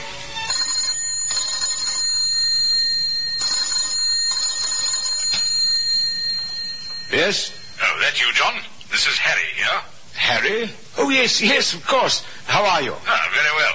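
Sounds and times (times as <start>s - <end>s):
telephone ringing in an office: 0.4s - 8.6s
speech: 7.2s - 13.7s.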